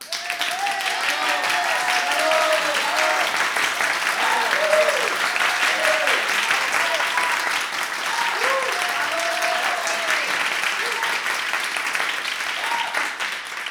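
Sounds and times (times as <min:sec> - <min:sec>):
enthusiastic applause: 0:00.0 - 0:13.6.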